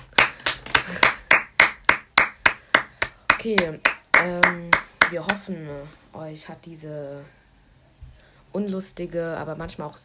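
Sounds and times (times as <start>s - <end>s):
one person clapping: 0.0s - 5.4s
speech: 3.4s - 7.4s, 8.5s - 10.0s.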